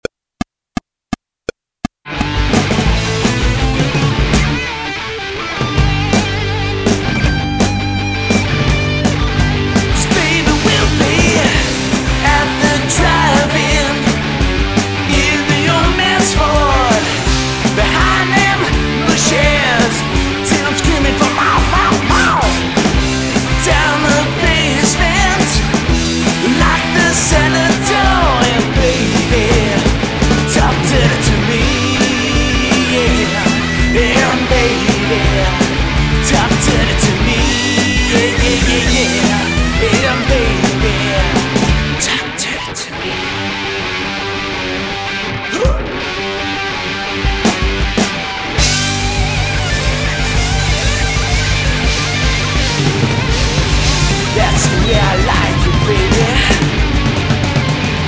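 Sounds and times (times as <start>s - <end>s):
80s band music: 2.1s - 58.0s.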